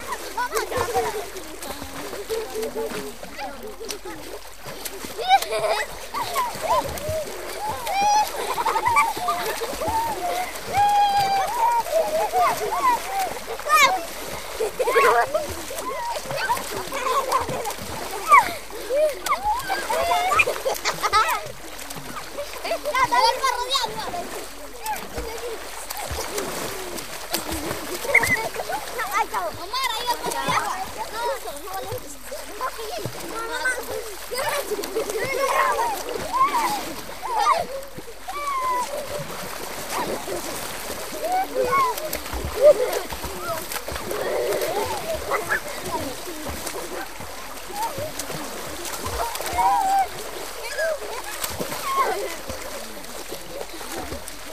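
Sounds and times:
Venezuelan children laughing: 0:00.0 - 0:54.5.

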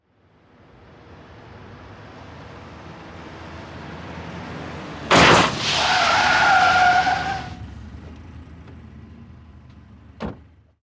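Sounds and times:
car tyres skidding: 0:03.2 - 0:09.7.

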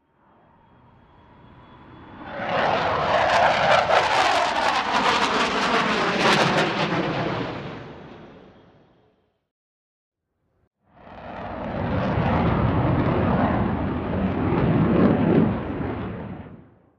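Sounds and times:
Dh110 Sea Vixen plane overhead: 0:00.0 - 0:09.3, 0:11.0 - 0:16.9.

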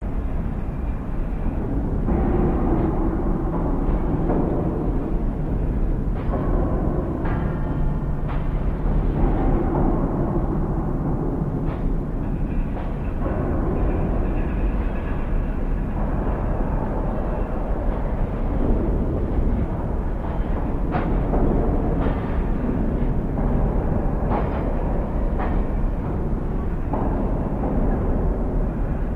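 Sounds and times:
distant railroad hump yard: 0:00.0 - 0:29.1.

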